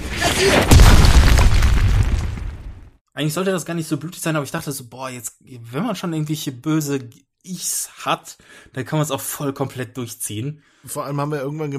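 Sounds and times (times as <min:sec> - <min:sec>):
explosion boom: 0:00.0 - 0:02.9
speech: 0:00.4 - 0:00.8, 0:03.2 - 0:11.7.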